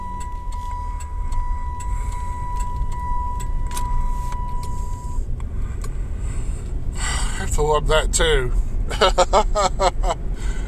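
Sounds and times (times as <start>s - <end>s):
car reminder chime for blinker left on: 0.0s - 5.2s
low car engine rumble: 0.0s - 10.6s
speech: 7.6s - 10.0s.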